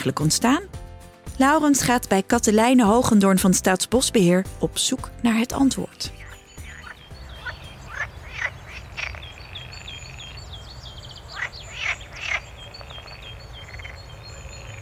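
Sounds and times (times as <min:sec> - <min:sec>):
speech: 0:00.0 - 0:00.8, 0:01.4 - 0:06.2
frogs croaking in a fen nature area outside Nijmegen: 0:06.1 - 0:14.8
faint bird chirps: 0:06.2 - 0:14.8.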